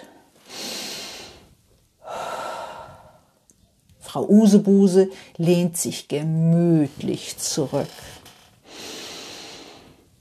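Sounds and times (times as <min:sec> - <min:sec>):
deep breath drawn in and let out slowly: 0:00.0 - 0:03.4, 0:08.6 - 0:10.1
speech: 0:04.1 - 0:08.2.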